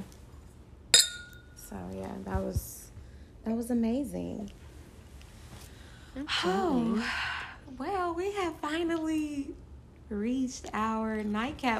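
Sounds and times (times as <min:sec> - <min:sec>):
glasses clinking in a toast: 0:01.0 - 0:01.6
speech: 0:01.7 - 0:02.8, 0:03.4 - 0:04.6, 0:06.2 - 0:11.7.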